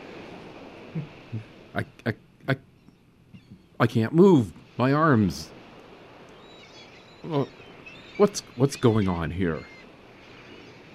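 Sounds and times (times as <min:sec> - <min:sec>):
faint hissing background: 0:00.0 - 0:10.9
speech: 0:01.0 - 0:02.7, 0:03.8 - 0:05.6, 0:07.3 - 0:07.6, 0:08.2 - 0:09.7
seagull calling by the sea: 0:02.5 - 0:03.8, 0:06.2 - 0:10.9.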